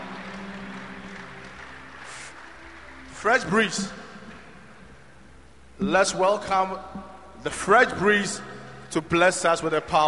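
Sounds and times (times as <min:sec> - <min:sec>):
audience clapping: 0:00.0 - 0:04.5
speech: 0:03.2 - 0:04.0, 0:05.8 - 0:10.0.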